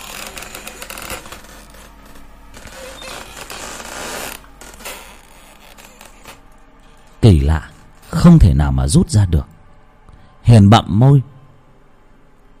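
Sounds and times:
wooden door bolt creaking as it slides against a wooden door: 0:00.0 - 0:06.5
speech: 0:07.3 - 0:09.5, 0:10.5 - 0:11.3.

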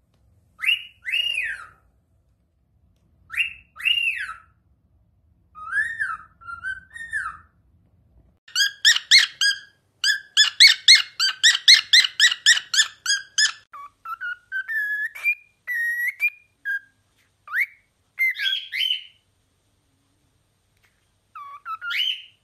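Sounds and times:
several cockatiels singing and whistling: 0:00.6 - 0:01.8, 0:03.3 - 0:04.5, 0:05.6 - 0:07.5, 0:08.5 - 0:19.2, 0:21.3 - 0:22.4.

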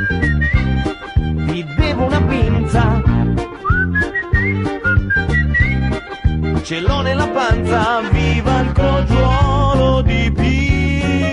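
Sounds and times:
person whistling a tune: 0:00.0 - 0:00.8, 0:03.6 - 0:06.0
repeating rhythmic low accompaniment: 0:00.0 - 0:11.3
speech: 0:06.7 - 0:09.3.

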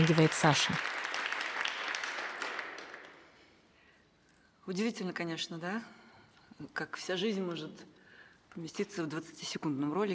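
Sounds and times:
speech: 0:00.0 - 0:01.0, 0:04.7 - 0:06.0, 0:06.6 - 0:10.1
dressed-up audience applauding: 0:00.0 - 0:03.3.

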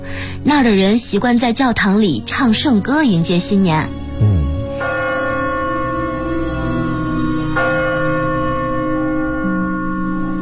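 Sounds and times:
speech: 0:00.4 - 0:04.4
church bells ringing in the New Year: 0:04.8 - 0:10.4.

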